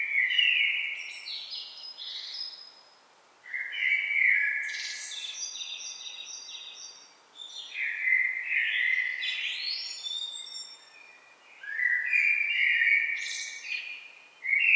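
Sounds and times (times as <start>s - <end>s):
common blackbird Turdus merula song: 0.0s - 14.7s.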